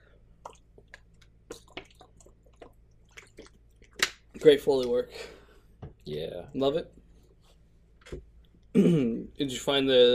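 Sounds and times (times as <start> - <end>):
person drinking water from a glass: 0.4 - 4.0
speech: 4.4 - 5.4, 6.1 - 7.0, 8.8 - 10.1.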